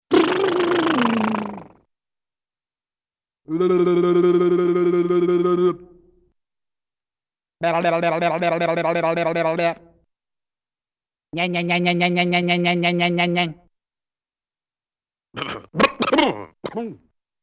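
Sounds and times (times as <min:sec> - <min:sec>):
person making cartoon vocal br-r-r-r and bla-bla-bla sounds: 0:00.1 - 0:01.9, 0:03.4 - 0:06.1, 0:07.6 - 0:09.9, 0:11.3 - 0:13.6, 0:15.4 - 0:17.1
person clearing throat: 0:15.4 - 0:17.1.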